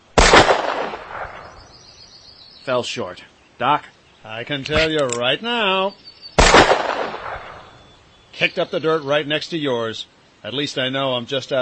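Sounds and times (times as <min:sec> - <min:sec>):
gunshot fired at a cottonwood log by a riverbank: 0:00.2 - 0:01.6, 0:06.4 - 0:07.8
speech: 0:02.7 - 0:06.0, 0:08.4 - 0:11.6.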